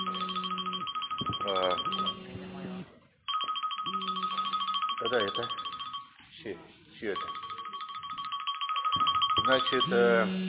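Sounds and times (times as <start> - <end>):
electronic melodic phone ringtone: 0.0 - 2.3, 3.3 - 6.2, 7.2 - 10.2
speech: 1.5 - 2.3, 5.1 - 5.6, 6.4 - 7.4, 9.5 - 10.4.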